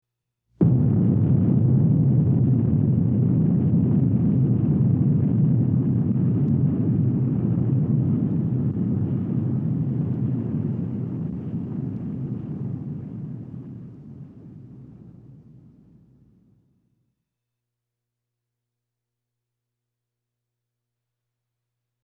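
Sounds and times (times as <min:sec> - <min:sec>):
explosion: 0:00.6 - 0:16.2.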